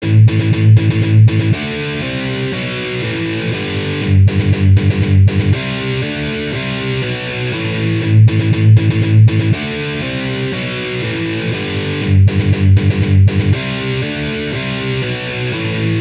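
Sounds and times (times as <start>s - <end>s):
metal guitar riffs: 0.0s - 15.9s.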